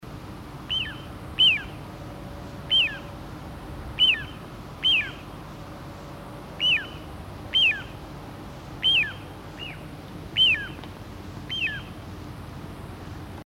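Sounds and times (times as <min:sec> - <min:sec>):
little ringed plover: 0:00.6 - 0:01.9, 0:02.6 - 0:03.2, 0:03.9 - 0:05.4, 0:06.5 - 0:08.1, 0:08.7 - 0:12.3.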